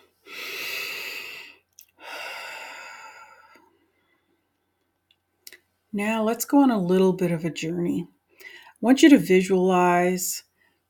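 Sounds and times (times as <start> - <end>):
deep breath: 0.0 - 4.4, 8.3 - 8.8
speech: 6.0 - 8.2, 8.8 - 10.5.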